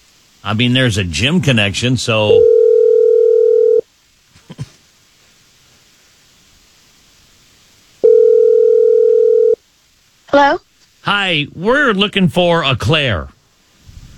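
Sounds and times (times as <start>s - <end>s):
speech: 0.4s - 2.6s, 11.3s - 13.4s
telephone line tone while placing a call: 2.3s - 3.8s, 8.0s - 9.6s.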